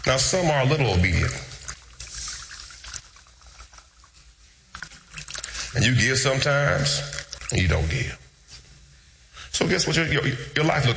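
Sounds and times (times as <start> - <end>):
speech: 0.0 - 1.5, 5.8 - 8.2, 9.6 - 10.9
water spurts: 0.0 - 7.9
water trickling from a turned nozzle: 1.2 - 5.9.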